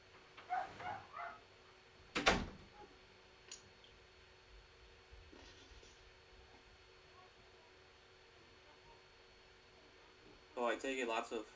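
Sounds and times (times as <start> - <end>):
dog barks: 0.4 - 1.5
speech: 10.7 - 11.5.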